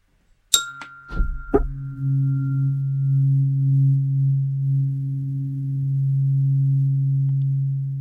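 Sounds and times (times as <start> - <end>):
tuning fork tuned to the Om tone struck with sharp metallic clinks: 0.5 - 3.2
tuning fork humming the Om tone at 136.1 hertz: 0.5 - 7.9.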